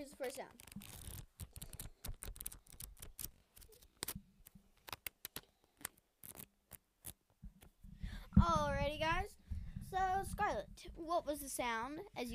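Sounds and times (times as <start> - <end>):
speech: 0.0 - 1.0, 8.4 - 9.3, 9.9 - 12.3
paper pages bent back and released: 0.2 - 7.7.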